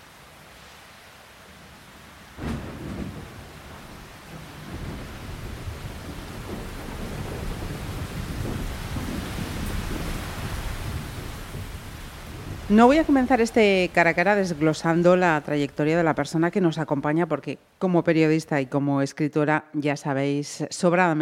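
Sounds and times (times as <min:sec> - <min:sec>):
heavy rain pouring on the roof of a Fiat car: 0:00.0 - 0:14.7
long rolling thunder building from a sharp crack: 0:02.3 - 0:16.2
speech: 0:12.7 - 0:21.2.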